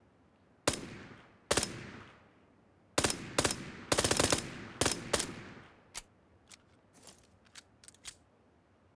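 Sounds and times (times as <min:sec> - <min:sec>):
suppressed P18C pistol firing full auto: 0:03.0 - 0:08.2.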